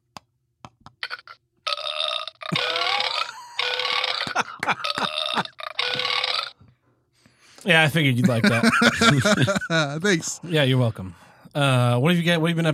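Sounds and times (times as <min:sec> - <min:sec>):
long gurgling burp: 0:01.1 - 0:06.6
laughter: 0:02.5 - 0:05.5, 0:08.1 - 0:10.4
speech: 0:07.6 - 0:12.7.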